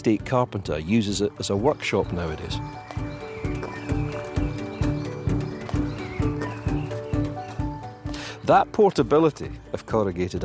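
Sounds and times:
speech: 0.0 - 3.1, 8.5 - 10.4
horse hooves clip-clopping drawing a cart: 1.6 - 7.9.

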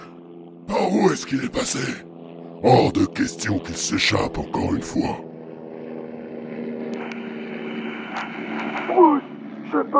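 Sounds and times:
drone propellers whirring overhead: 0.0 - 9.6
brief vocal sounds: 0.7 - 2.0, 2.6 - 5.2
speech: 0.7 - 5.3.

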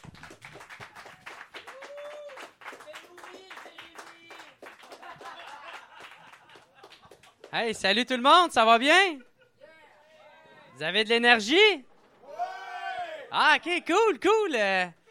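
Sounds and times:
crowd clapping: 0.0 - 7.8
whoops and cheers: 1.6 - 2.6, 12.2 - 13.3
laughter: 4.8 - 7.4, 9.1 - 9.8
speech: 7.5 - 9.3, 10.8 - 11.9, 13.3 - 15.0.

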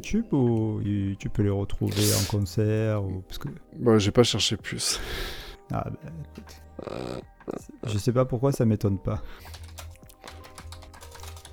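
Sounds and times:
speech: 0.0 - 9.8
typing on a computer keyboard: 9.3 - 11.5.

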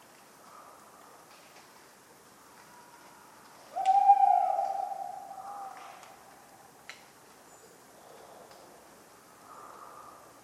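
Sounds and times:
tawny owl hooting on a cold autumn night: 3.7 - 6.0.

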